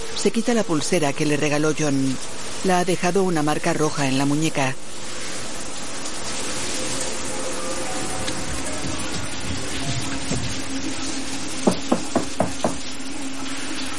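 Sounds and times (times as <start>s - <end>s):
shower water running: 0.0s - 13.9s
speech: 0.2s - 5.1s
sharp knocks: 11.6s - 12.9s.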